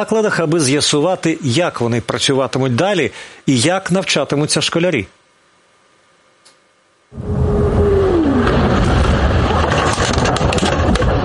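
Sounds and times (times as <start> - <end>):
speech: 0.0 - 5.2
car driving with road rumble: 7.1 - 11.2
falling car engine tone: 7.1 - 11.2
wind buffeting: 7.1 - 11.2.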